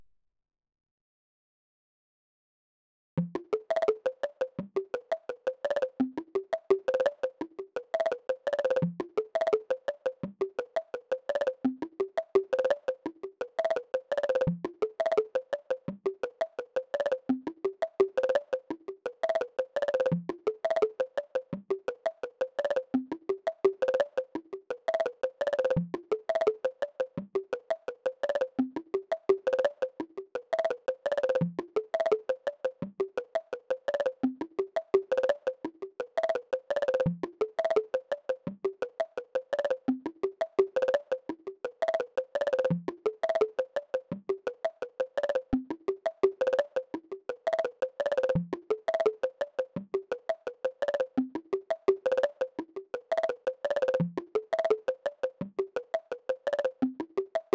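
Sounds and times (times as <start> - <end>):
bongo: 3.2 - 57.5.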